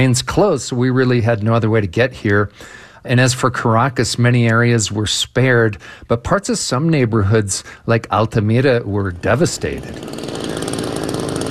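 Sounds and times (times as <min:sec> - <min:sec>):
speech: 0:00.0 - 0:10.4
chainsaw cutting a tunnel through a collapsed high-rise apartment building after an earthquake: 0:09.0 - 0:11.4.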